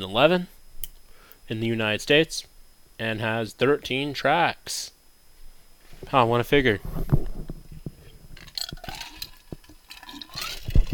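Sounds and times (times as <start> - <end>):
speech: 0.0 - 0.6, 1.5 - 5.0, 6.0 - 7.2
small clinks and knocks: 8.3 - 10.9
water pouring into a glass: 8.5 - 10.9.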